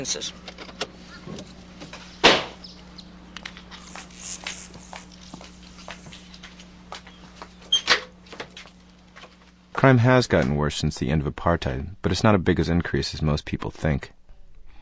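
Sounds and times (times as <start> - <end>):
speech: 0.0 - 0.6, 9.8 - 14.2
low motor hum of electric metal gates at a house: 0.0 - 10.6.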